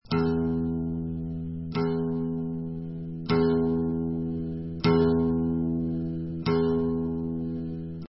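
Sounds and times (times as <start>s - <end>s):
guitar being tuned: 0.0s - 8.0s.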